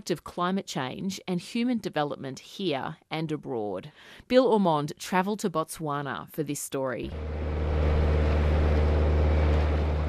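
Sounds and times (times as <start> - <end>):
speech: 0.0 - 7.7
boat motor droning while travelling through wetland water: 7.1 - 10.0
wash of broadband noise: 7.1 - 10.0.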